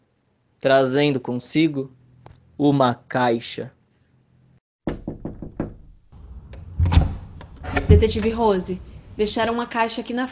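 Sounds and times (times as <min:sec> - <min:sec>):
speech: 0:00.6 - 0:02.0, 0:02.6 - 0:03.8, 0:08.0 - 0:10.2
quick firm knocks on a door: 0:04.8 - 0:06.0.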